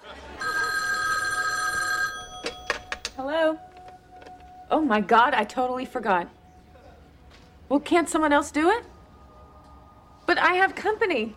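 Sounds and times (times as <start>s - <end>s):
telephone ringing with an electronic trill: 0.4s - 4.7s
speech: 4.7s - 6.4s, 7.7s - 8.9s, 10.4s - 11.3s.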